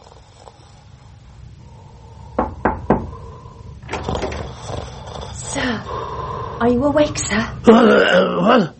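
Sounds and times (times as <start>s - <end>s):
firm knocking on a door: 2.4s - 3.2s
speech: 5.7s - 8.7s.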